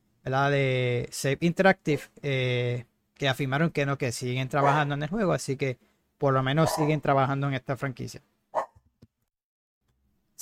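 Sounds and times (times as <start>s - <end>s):
speech: 0.2s - 8.3s
dog barking: 4.6s - 4.9s, 6.6s - 7.0s, 8.6s - 8.8s.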